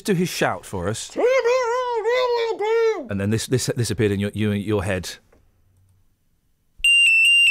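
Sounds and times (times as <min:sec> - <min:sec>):
speech: 0:00.0 - 0:05.3
loud high-pitched electronic alarm beep: 0:06.8 - 0:07.4.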